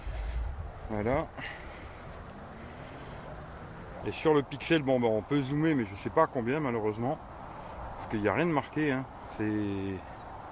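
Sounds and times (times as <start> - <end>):
wind buffeting a phone microphone: 0.0 - 3.0
speech: 0.9 - 1.6, 4.0 - 7.3, 8.0 - 10.1.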